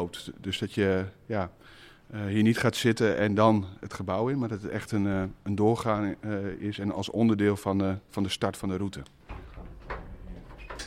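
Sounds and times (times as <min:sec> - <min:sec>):
speech: 0:00.0 - 0:09.2
locked glass door tugged against its lock, rattling and clunking: 0:09.3 - 0:10.8.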